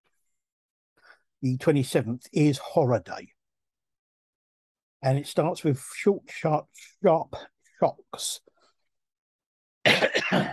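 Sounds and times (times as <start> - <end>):
speech: 1.4 - 3.4, 5.0 - 8.5, 9.9 - 10.5
person coughing: 9.9 - 10.5.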